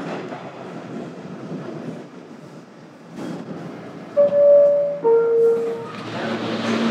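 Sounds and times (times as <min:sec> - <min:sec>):
train rumbling along its rails: 0:00.0 - 0:06.9
high-pitched train wheel squeals: 0:04.2 - 0:06.1.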